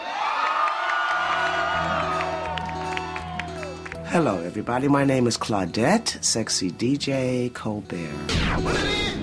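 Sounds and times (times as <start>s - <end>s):
crowd screaming and cheering: 0.0s - 4.0s
speech: 4.1s - 9.1s.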